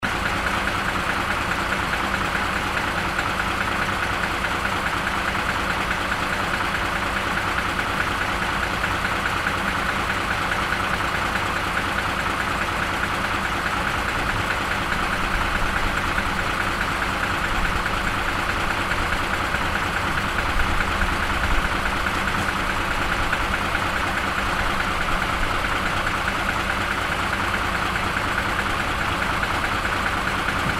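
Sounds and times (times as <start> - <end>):
truck sitting still: 0.0 - 30.7.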